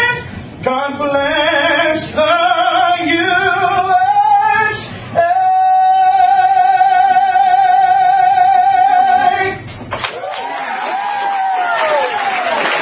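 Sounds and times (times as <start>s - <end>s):
man singing a patriotic song with vibrato: 0.0s - 9.7s
crowd cheering and whooping inside a restaurant: 10.0s - 12.8s.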